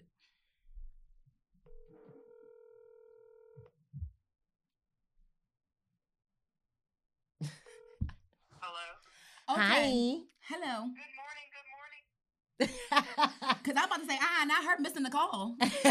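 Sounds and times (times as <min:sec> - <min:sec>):
outgoing phone call ring tone through the earpiece: 0:01.9 - 0:03.6, 0:07.6 - 0:08.0
speech: 0:09.6 - 0:11.1, 0:12.6 - 0:15.8
laughter: 0:12.6 - 0:13.9, 0:15.6 - 0:15.8.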